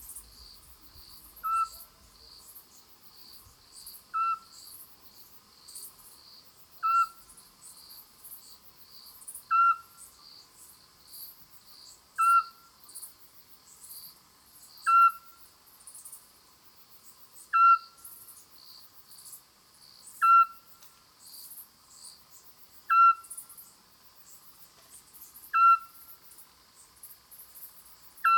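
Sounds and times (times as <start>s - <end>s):
female Eurasian scops owl Otus scops calling: 1.4s - 2.0s, 4.1s - 4.5s, 6.8s - 7.2s, 9.5s - 9.9s, 12.2s - 12.6s, 14.9s - 15.3s, 17.5s - 18.0s, 20.2s - 20.6s, 22.9s - 23.4s, 25.5s - 26.0s, 28.2s - 28.3s.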